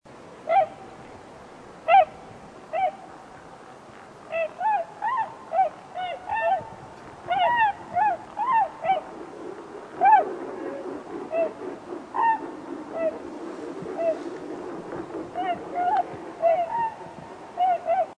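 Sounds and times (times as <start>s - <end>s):
tundra swan overhead at night at Devil's Lake State Park: 0.4s - 0.9s, 1.8s - 3.1s, 4.2s - 18.1s.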